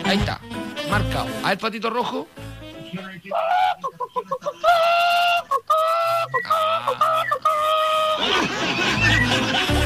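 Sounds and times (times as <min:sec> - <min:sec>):
speech: 0:00.1 - 0:05.5
person imitating a clucking hen in an animal imitation contest: 0:03.3 - 0:08.3
laughter: 0:03.6 - 0:09.8.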